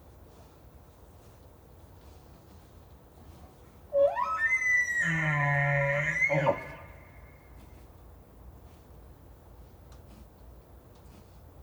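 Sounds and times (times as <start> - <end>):
bull elk bugle: 3.9 - 7.2.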